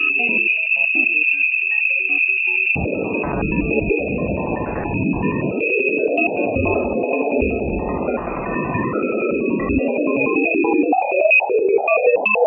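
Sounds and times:
constant high whine from converted magnetic field fluctuations: 0:00.0 - 0:12.4
Jupiter and Ganymede magnetic field fluctuations converted to sound, warbling and chirping: 0:02.8 - 0:12.4.

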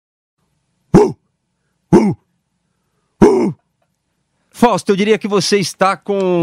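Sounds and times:
person imitating a dog barking with rough cough-like barks: 0:00.9 - 0:01.2, 0:01.9 - 0:02.2, 0:03.2 - 0:03.6
speech: 0:02.0 - 0:02.2, 0:04.6 - 0:06.4.

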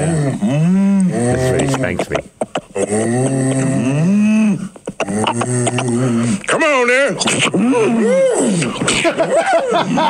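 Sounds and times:
person imitating a cow mooing: 0:00.0 - 0:02.0, 0:02.8 - 0:08.7
speech: 0:01.3 - 0:10.0
laughter: 0:08.6 - 0:10.0.

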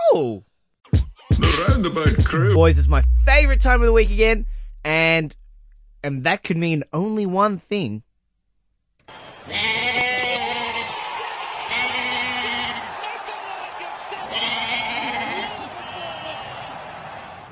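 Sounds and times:
speech: 0:00.1 - 0:00.5, 0:01.4 - 0:05.4, 0:06.0 - 0:08.1
goat bleating: 0:09.5 - 0:10.9, 0:11.7 - 0:12.8, 0:14.2 - 0:15.6.

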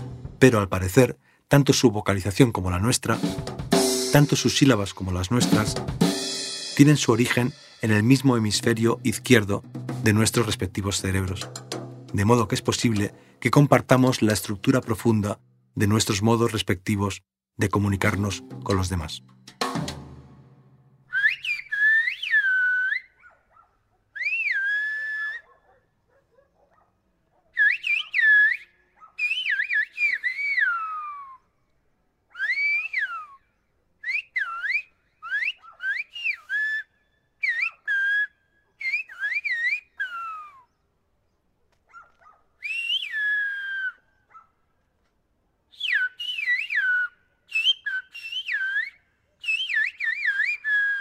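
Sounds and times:
speech: 0:00.4 - 0:06.2, 0:06.8 - 0:20.0
two people conversing in whistled language of the Canary Islands: 0:21.1 - 0:23.2, 0:24.2 - 0:25.5, 0:27.6 - 0:31.5, 0:32.4 - 0:40.8, 0:42.6 - 0:44.2, 0:45.7 - 0:51.0.

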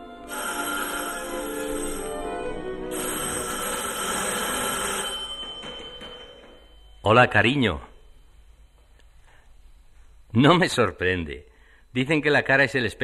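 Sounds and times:
telephone bell ringing in a study: 0:00.0 - 0:08.4
speech: 0:07.0 - 0:07.9, 0:10.4 - 0:13.0.

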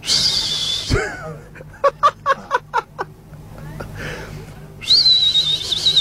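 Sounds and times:
person whistling in celebration: 0:00.0 - 0:00.9, 0:04.8 - 0:05.9
laughter: 0:00.9 - 0:04.0.

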